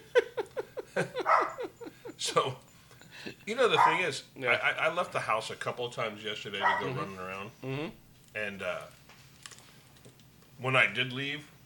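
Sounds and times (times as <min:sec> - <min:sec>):
laughter: 0:00.0 - 0:03.4
speech: 0:01.0 - 0:01.5, 0:02.2 - 0:09.0, 0:10.6 - 0:11.6
dog letting out short high yelping barks: 0:01.2 - 0:01.7, 0:03.8 - 0:04.0, 0:06.6 - 0:07.0.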